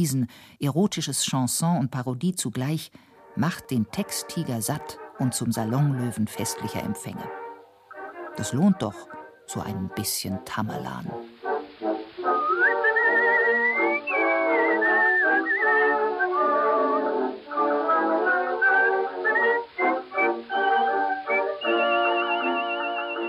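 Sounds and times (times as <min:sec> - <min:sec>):
speech: 0:00.0 - 0:07.4, 0:08.4 - 0:11.3
steady tonal backing: 0:03.2 - 0:23.2
artistic whistling melody from a 1922 recording: 0:12.2 - 0:23.2.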